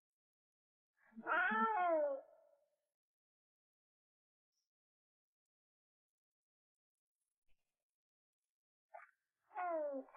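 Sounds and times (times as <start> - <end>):
wild cat meowing and wailing in its natural habitat: 1.2 - 2.3.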